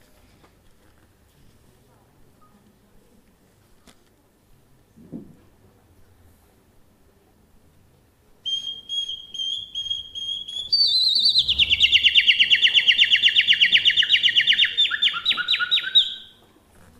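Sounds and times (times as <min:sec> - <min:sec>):
male nightingale singing: 0:08.4 - 0:16.4.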